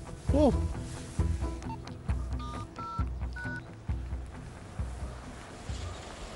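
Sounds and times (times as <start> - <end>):
rumbling windy outdoor background: 0.0 - 6.3
speech: 0.4 - 0.8
mobile phone keypad tones: 1.6 - 3.7.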